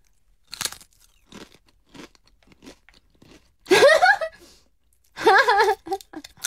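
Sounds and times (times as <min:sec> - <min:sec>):
vinegar-flavoured snack chips crunching as bitten and chewed: 0:00.4 - 0:03.6, 0:06.0 - 0:06.4
laughter: 0:03.7 - 0:04.4, 0:05.2 - 0:06.2.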